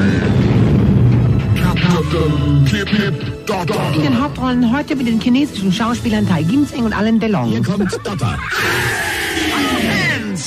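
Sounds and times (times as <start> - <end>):
big explosion sound effect with deep rumbling boom: 0.0 - 1.6
speech: 2.1 - 10.4.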